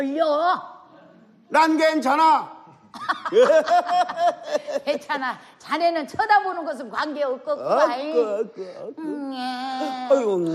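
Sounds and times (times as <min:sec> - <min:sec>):
speech: 0:00.0 - 0:00.8, 0:01.5 - 0:10.5
laughter: 0:03.0 - 0:05.2
human voice imitating an exhausted newborn baby crying weakly: 0:09.0 - 0:10.5.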